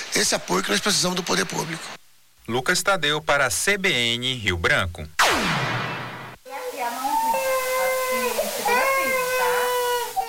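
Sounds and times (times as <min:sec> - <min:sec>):
speech: 0:00.2 - 0:05.6
infant under a year old crying after a flu vaccination: 0:06.5 - 0:10.2.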